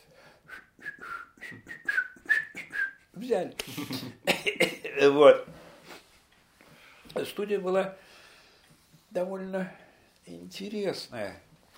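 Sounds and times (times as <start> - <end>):
man whistling a tune: 0.4 - 3.1
speech: 3.2 - 5.5, 7.2 - 8.1, 9.1 - 11.5.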